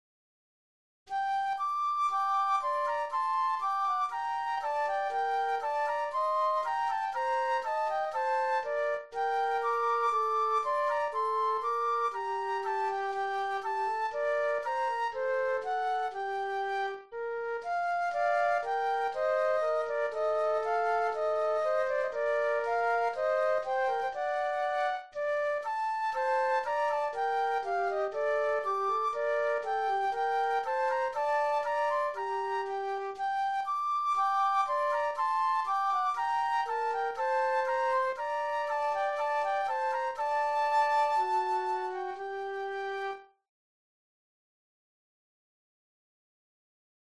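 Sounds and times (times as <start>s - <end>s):
classical gavotte flute duet: 1.1s - 43.4s.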